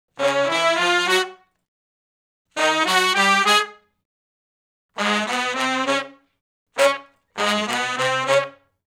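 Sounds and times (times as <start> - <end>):
R&B horn section riff in unison in C sharp: 0.2 - 1.4, 2.6 - 3.8, 5.0 - 6.2, 6.8 - 8.7.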